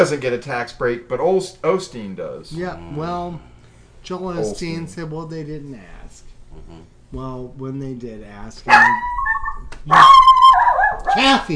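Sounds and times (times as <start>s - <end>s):
speech: 0.0s - 9.2s, 9.8s - 10.3s, 11.1s - 11.5s
dog whining and yelping: 8.7s - 11.3s.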